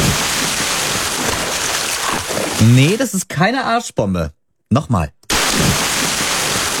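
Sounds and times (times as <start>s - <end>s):
churning, spraying water: 0.0s - 3.0s, 5.3s - 6.7s
speech: 2.6s - 5.8s.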